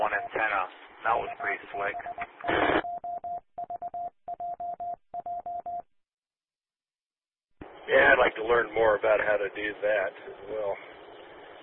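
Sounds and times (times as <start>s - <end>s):
speech: 0.7s - 2.8s, 8.4s - 10.9s
static burst: 2.4s - 2.8s.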